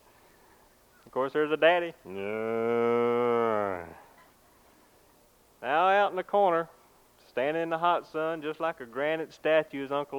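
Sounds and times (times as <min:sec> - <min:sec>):
speech: 0:01.2 - 0:04.0, 0:05.6 - 0:06.8, 0:07.4 - 0:10.1
cow mooing: 0:02.1 - 0:04.0.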